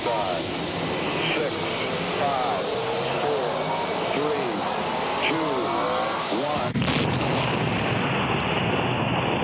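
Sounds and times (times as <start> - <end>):
faint voices: 0.0 - 6.7
rocket launch rumbling roar: 0.0 - 9.4
rocket ignition blast: 6.6 - 9.4.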